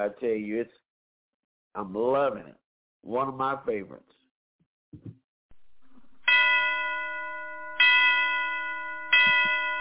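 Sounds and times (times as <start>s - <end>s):
speech: 0.0s - 0.9s, 1.8s - 4.2s, 4.9s - 5.2s
Christmas music: 6.2s - 9.7s
ringing bell chimes: 6.2s - 9.7s.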